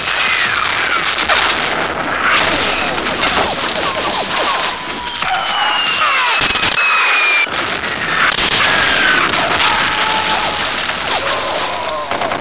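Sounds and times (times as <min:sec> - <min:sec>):
radio battle: 0:00.0 - 0:12.3.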